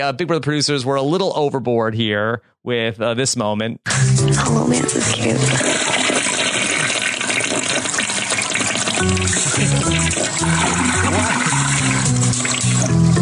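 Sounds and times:
speech: 0.0s - 5.9s, 9.0s - 13.1s
toilet flushing: 4.3s - 13.0s.

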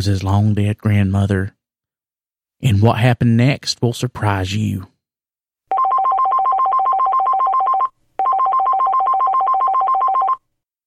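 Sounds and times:
speech: 0.0s - 1.6s, 2.6s - 4.9s
telephone ringing with fast electronic warble: 5.7s - 10.5s.

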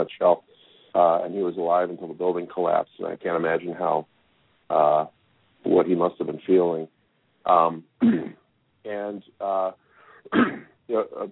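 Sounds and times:
speech: 0.0s - 11.3s
raspy throat clearing: 8.0s - 8.4s, 10.2s - 10.8s.

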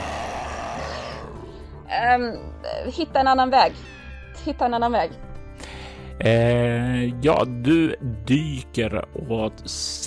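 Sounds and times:
deep growling roar of a large beast: 0.0s - 1.9s
speech: 2.0s - 5.3s, 6.2s - 10.0s.

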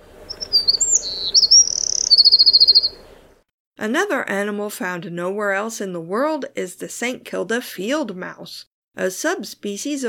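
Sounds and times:
St Kilda wren song: 0.0s - 3.4s
speech: 2.8s - 3.2s, 3.8s - 10.0s.

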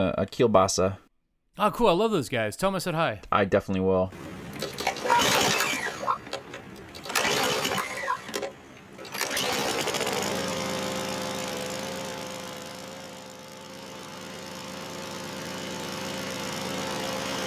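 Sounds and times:
speech: 0.0s - 1.0s, 1.6s - 4.7s
choppy rattling bursts: 4.2s - 17.4s
small electric scooter motor whirring: 4.2s - 17.4s.

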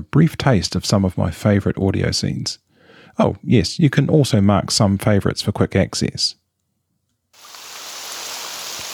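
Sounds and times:
speech: 0.1s - 6.4s
rain falling on the open water of a loch in the Scottish Highlands: 7.4s - 8.9s.

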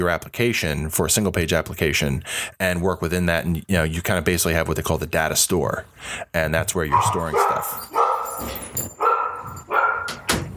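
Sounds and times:
speech: 0.0s - 9.0s
dogs barking with yaps and whiny tones: 6.9s - 10.3s.

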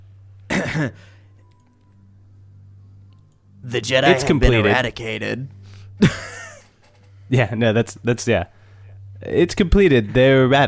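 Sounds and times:
faint steady hum: 0.0s - 10.6s
short throaty cough: 0.5s - 1.2s
speech: 0.6s - 1.2s, 3.6s - 6.4s, 7.3s - 8.6s, 9.2s - 10.6s.

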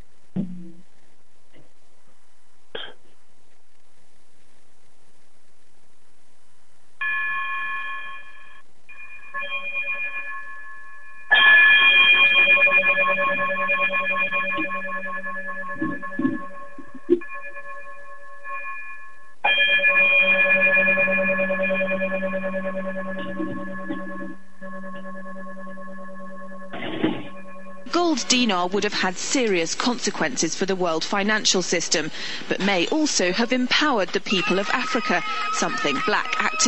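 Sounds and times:
bright electronic outro chime: 7.0s - 28.4s
speech: 28.5s - 36.6s.

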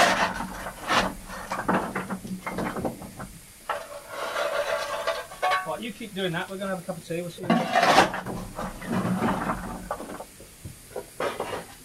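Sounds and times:
coal being shovelled into a steam locomotive firebox: 0.0s - 3.0s, 3.6s - 6.0s, 7.3s - 10.3s, 10.9s - 11.8s
steady hiss of steam: 0.0s - 11.8s
speech: 5.9s - 9.3s.

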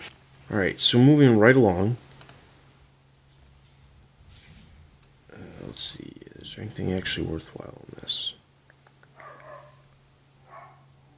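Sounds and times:
low electrical hum: 0.0s - 11.1s
speech: 0.5s - 2.1s, 6.6s - 8.2s
dog barking: 9.2s - 9.8s, 10.4s - 10.9s.

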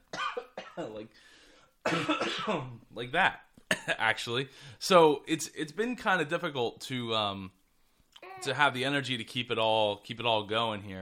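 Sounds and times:
person coughing harshly: 0.2s - 1.0s, 1.9s - 2.7s
speech: 0.8s - 7.6s, 8.4s - 11.0s.

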